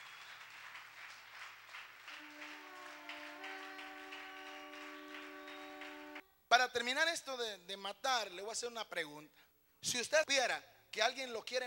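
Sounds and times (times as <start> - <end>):
church congregation clapping rhythmically: 0.0 - 6.2
sustained musical tones: 2.2 - 6.2
speech: 6.6 - 11.6.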